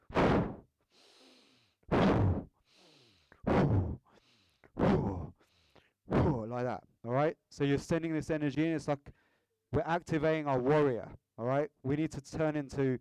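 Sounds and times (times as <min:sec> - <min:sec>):
forceful breaths drawn in and pushed out: 0:00.0 - 0:06.0
speech: 0:06.5 - 0:12.9.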